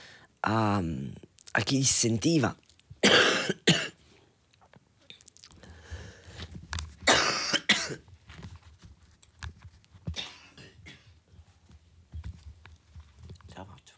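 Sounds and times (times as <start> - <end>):
speech: 0.4 - 3.6
person coughing in a fit: 3.0 - 4.0, 7.0 - 8.0, 10.1 - 11.2.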